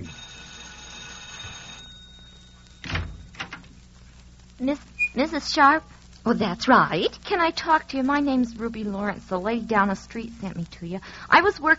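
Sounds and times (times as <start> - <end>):
doorbell tone ringing: 0.0 - 3.4
front door opening with latch clunk: 2.8 - 3.7
speech: 4.6 - 11.7.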